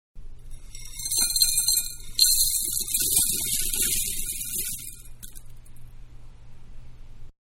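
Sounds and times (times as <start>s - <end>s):
cereal pouring into a small bowl: 0.5s - 5.5s.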